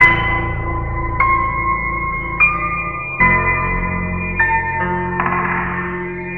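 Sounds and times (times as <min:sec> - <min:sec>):
sad piano loop: 0:00.0 - 0:06.3.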